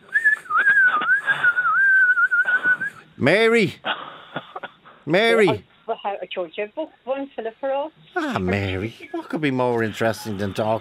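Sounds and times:
sustained high-pitched shrill whistle: 0:00.1 - 0:03.0
speech: 0:03.2 - 0:03.9, 0:05.1 - 0:10.7.

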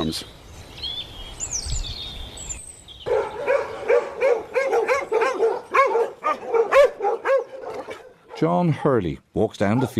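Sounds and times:
speech: 0:00.0 - 0:00.4, 0:08.4 - 0:09.9
dogs on a farm barking excitedly at someone's arrival: 0:03.0 - 0:08.8, 0:09.6 - 0:09.9.

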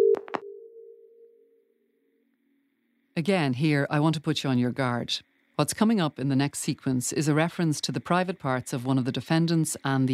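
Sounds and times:
short beep: 0:00.0 - 0:01.3
steady low telephone tone on a line connecting court proceedings: 0:00.0 - 0:01.7
speech: 0:03.2 - 0:10.1.

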